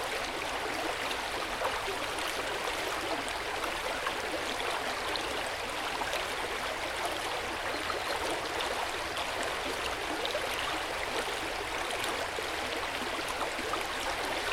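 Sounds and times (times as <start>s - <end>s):
river water rushing and splashing: 0.0s - 14.5s.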